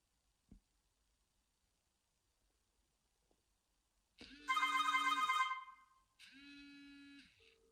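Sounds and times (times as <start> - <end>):
mobile phone ringing for an incoming call: 4.4 - 5.9.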